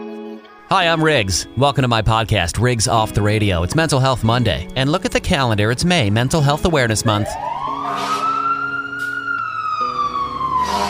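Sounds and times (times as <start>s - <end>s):
speech: 0.7s - 8.1s
fire truck siren wailing: 7.0s - 10.8s.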